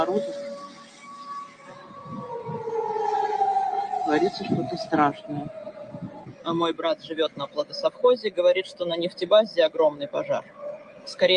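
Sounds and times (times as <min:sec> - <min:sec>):
speech: 0:00.0 - 0:00.5, 0:04.1 - 0:11.3
air raid siren wailing outdoors: 0:00.0 - 0:09.2, 0:10.4 - 0:11.3
faint low rumbling: 0:01.8 - 0:07.8.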